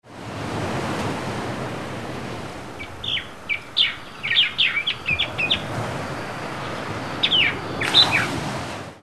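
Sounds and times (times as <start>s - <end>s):
coral reef surf in a tropical rainforest: 0.0s - 9.0s
birds in a tropical rainforest: 2.7s - 8.4s.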